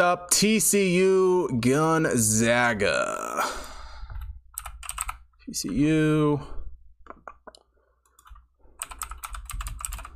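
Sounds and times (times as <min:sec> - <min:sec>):
speech: 0:00.0 - 0:03.7, 0:05.5 - 0:06.6
loud computer keyboard typing while searching notes: 0:04.5 - 0:05.3, 0:07.1 - 0:10.1.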